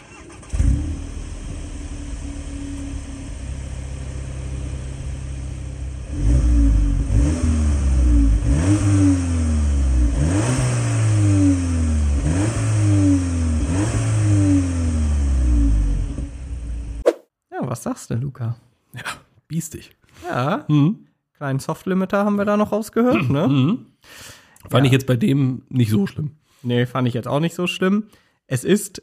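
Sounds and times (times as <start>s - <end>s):
car engine cranking, idling and revving hard: 0.0s - 17.0s
speech: 18.1s - 29.0s.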